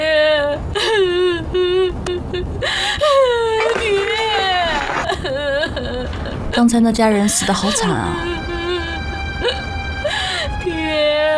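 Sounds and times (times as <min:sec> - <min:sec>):
person crying and wailing in grief over a death: 0:00.8 - 0:06.4, 0:07.4 - 0:11.1
speech: 0:06.6 - 0:08.4.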